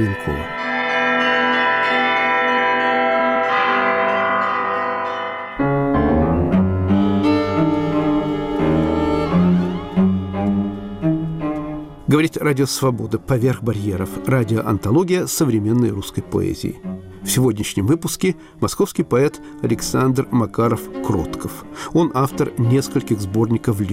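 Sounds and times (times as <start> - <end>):
speech: 0.0 - 0.7, 12.2 - 23.9
bright high church bells pealing: 0.0 - 10.4
deeper heavier church bells: 0.0 - 12.1.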